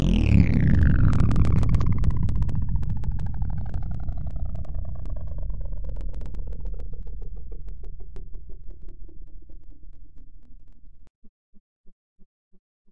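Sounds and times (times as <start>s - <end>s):
evil synth slowdown: 0.0s - 11.1s.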